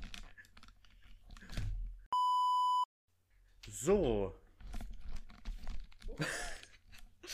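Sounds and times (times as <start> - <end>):
rustling and handling noise: 0.0 - 2.0, 3.3 - 7.2
phone beep signalling an incoming call: 2.2 - 2.9
speech: 3.8 - 4.4.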